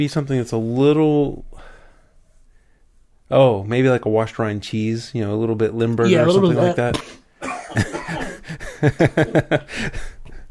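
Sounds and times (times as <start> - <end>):
speech: 0.0 - 1.7, 3.3 - 10.4
laughter: 6.1 - 10.1
harsh choking coughing fit: 6.9 - 8.6.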